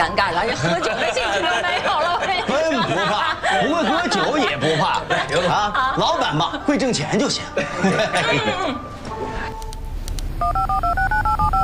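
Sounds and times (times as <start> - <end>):
speech: 0.0 - 0.9, 6.3 - 9.4
laughter: 0.4 - 9.0
telephone number dialed with crisp keypad tones: 10.4 - 11.6.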